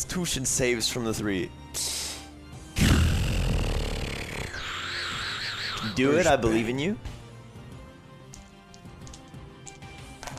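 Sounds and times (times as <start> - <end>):
speech: 0.0 - 1.9, 6.0 - 7.1
person growling a roar imitating a hound monster: 2.8 - 5.9.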